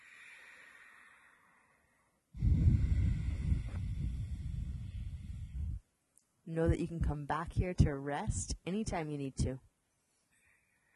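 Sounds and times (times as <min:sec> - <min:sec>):
ujjayi breathing in and out through the nose through a narrowed throat: 0:00.0 - 0:05.8
speech: 0:06.5 - 0:09.7.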